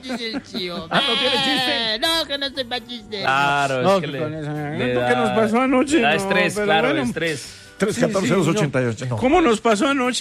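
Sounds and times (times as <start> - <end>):
laughter: 0.0 - 2.0
speech: 0.0 - 10.1
goat bleating: 0.9 - 1.7.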